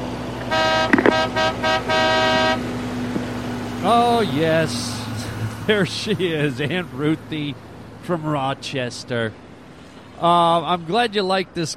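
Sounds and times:
low car engine rumble: 0.0s - 11.7s
car horn honking: 0.4s - 2.8s
speech: 3.8s - 4.9s, 5.7s - 9.4s, 10.2s - 11.7s.

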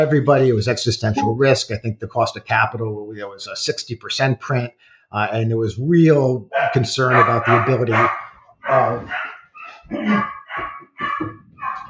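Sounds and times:
speech: 0.0s - 9.3s, 9.9s - 11.4s
dogs barking: 6.5s - 11.8s.

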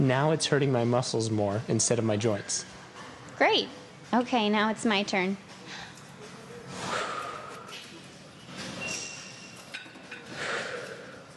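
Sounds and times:
speech: 0.0s - 2.8s, 3.4s - 5.8s
forceful breathy exhales of a person pushing a weight at the gym: 6.7s - 7.7s, 10.3s - 11.2s.

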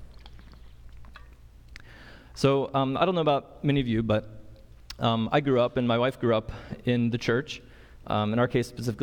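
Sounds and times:
person sipping water: 0.0s - 2.0s
low steady hum: 0.0s - 9.0s
speech: 2.4s - 4.4s, 5.0s - 9.0s.

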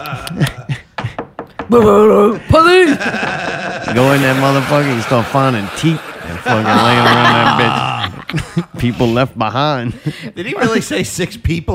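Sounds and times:
speech: 0.0s - 0.6s, 1.7s - 11.7s
laughter: 0.0s - 1.2s, 2.6s - 11.4s
sharp hollow knocks on a door: 0.9s - 2.2s.

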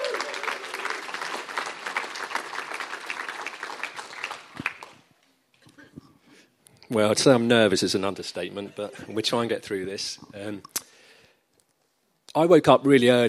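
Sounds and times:
audience applause: 0.0s - 5.1s
speech: 6.9s - 10.8s, 12.4s - 13.2s.

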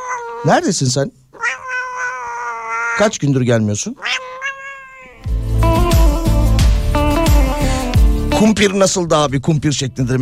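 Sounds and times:
cat meowing: 0.0s - 0.6s, 1.4s - 3.2s, 4.0s - 5.3s
speech: 0.4s - 1.2s, 3.0s - 4.2s, 8.4s - 10.1s
loud rhythmic music with a steady thumping beat: 5.2s - 8.5s.

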